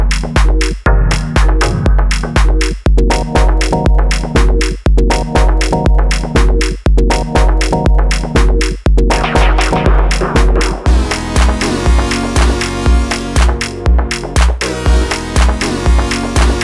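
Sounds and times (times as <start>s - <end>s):
signature musical chords: 0.2s - 16.6s.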